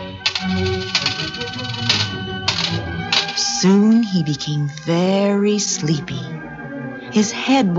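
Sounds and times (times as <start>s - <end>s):
gold coins clinking as they are counted from bags: 0.0s - 4.3s
speech: 3.6s - 6.4s, 7.1s - 7.7s.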